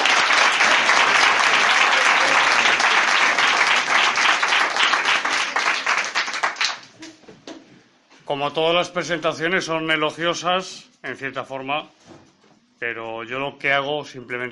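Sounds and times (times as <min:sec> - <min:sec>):
audience applause welcoming a guest at a talk: 0:00.0 - 0:07.0
speech: 0:08.3 - 0:12.0, 0:12.8 - 0:14.5.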